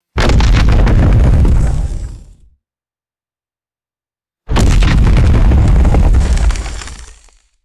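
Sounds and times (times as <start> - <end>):
heavy booming wood impacts: 0.2 - 2.4, 4.5 - 7.1
rumble: 0.2 - 2.6, 4.5 - 7.4.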